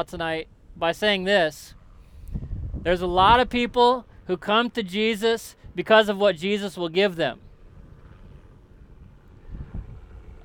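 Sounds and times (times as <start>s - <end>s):
speech: 0.0s - 7.5s
helicopter flying overhead: 7.4s - 10.4s.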